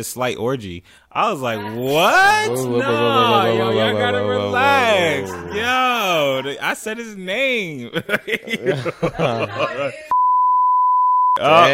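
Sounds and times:
speech: 0:00.0 - 0:10.2, 0:11.4 - 0:11.7
laughter: 0:01.4 - 0:06.6, 0:07.6 - 0:10.2
steady electronic censor bleep over speech: 0:10.1 - 0:11.4.

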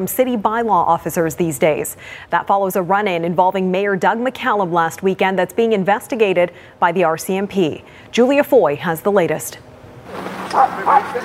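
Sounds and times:
speech: 0:00.0 - 0:11.2
low steady murmur: 0:10.2 - 0:11.2
dog barking: 0:10.5 - 0:11.2.

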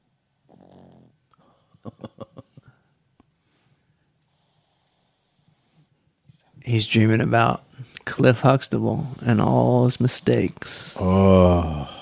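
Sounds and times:
dog snoring: 0:00.0 - 0:01.2, 0:04.3 - 0:05.9
speech: 0:06.7 - 0:12.0.

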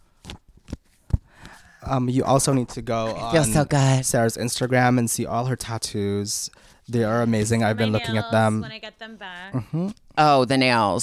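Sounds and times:
woman shuffling a deck of fashion icon cards: 0:00.2 - 0:01.6
speech: 0:01.9 - 0:11.0.

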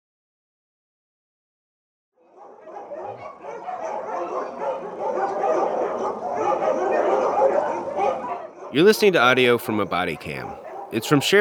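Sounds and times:
white Samoyed dogs barking outdoors at a house: 0:02.2 - 0:11.3
speech: 0:08.0 - 0:11.3.

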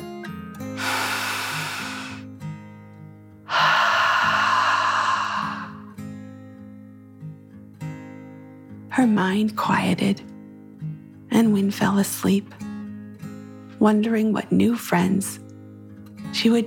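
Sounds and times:
child's slow deep breath in and out during a bedtime meditation: 0:00.8 - 0:02.3, 0:03.5 - 0:05.9
speech: 0:09.0 - 0:10.3, 0:11.4 - 0:12.6, 0:13.8 - 0:15.4, 0:16.4 - 0:16.6.

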